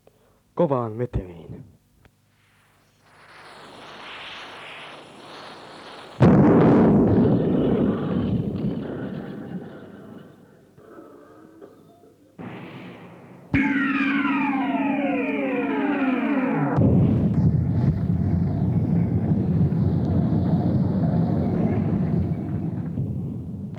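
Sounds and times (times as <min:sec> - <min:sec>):
speech: 0:00.6 - 0:01.4
loud explosions booming into heavy rumbling: 0:06.1 - 0:09.6, 0:12.4 - 0:23.7
falling sweeping tones: 0:12.4 - 0:23.0
sustained low roar: 0:14.5 - 0:23.0.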